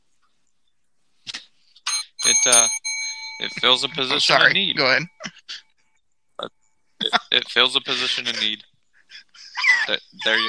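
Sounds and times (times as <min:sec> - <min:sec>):
small bell ringing: 0:01.9 - 0:05.2
speech: 0:02.3 - 0:02.8, 0:03.4 - 0:05.6, 0:06.4 - 0:08.7, 0:09.9 - 0:10.4.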